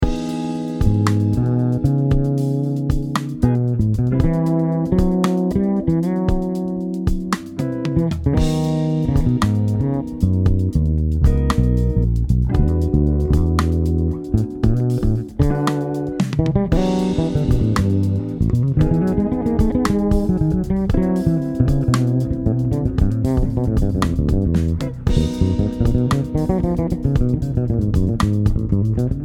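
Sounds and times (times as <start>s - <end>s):
fretless bass guitar: 0.0s - 29.2s.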